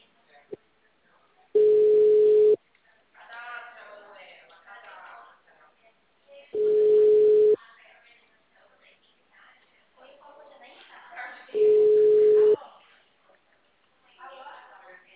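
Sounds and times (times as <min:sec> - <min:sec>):
telephone ringback tone on an outgoing call: 0:01.6 - 0:02.6, 0:06.6 - 0:07.6, 0:11.6 - 0:12.6.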